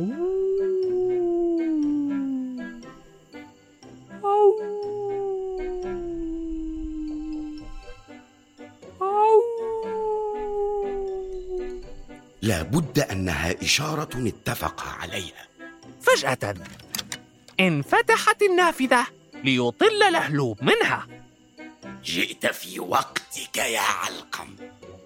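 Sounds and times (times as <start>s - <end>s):
person howling like a wolf by a large window of a house: 0.0s - 2.8s, 4.2s - 7.7s, 9.0s - 11.9s
speech: 12.5s - 15.5s, 16.1s - 16.8s, 17.6s - 21.1s, 22.0s - 24.8s.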